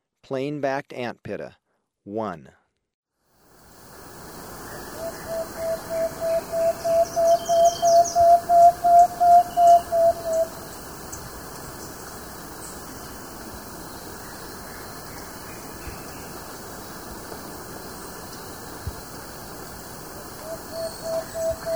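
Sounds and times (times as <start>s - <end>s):
Plain-backed antpitta calling in South America: 4.3s - 21.7s.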